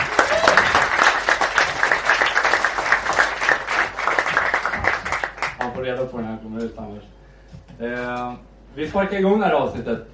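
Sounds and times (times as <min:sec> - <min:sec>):
scattered cheers: 0:00.0 - 0:01.0
live audience applause: 0:00.0 - 0:05.8
speech: 0:06.0 - 0:10.1.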